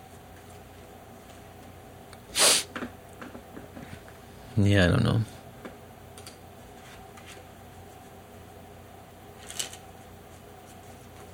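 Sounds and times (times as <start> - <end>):
low hum: 0.0 - 11.3
speech: 4.6 - 5.4
playing cards shuffling: 9.4 - 11.3.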